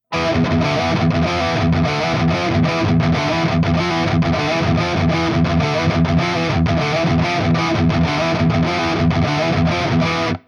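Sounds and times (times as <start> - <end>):
high gain guitar amp: 0.0 - 10.4.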